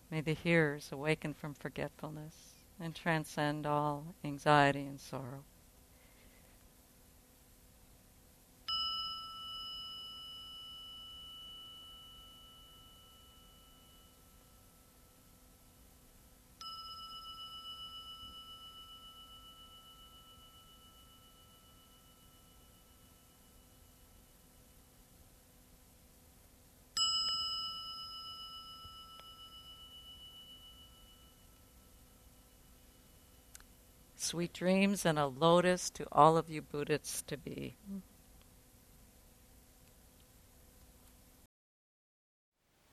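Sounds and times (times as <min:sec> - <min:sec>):
speech: 0:00.1 - 0:05.5, 0:34.2 - 0:38.1
meditation bell struck and ringing: 0:08.6 - 0:25.0, 0:27.0 - 0:34.0.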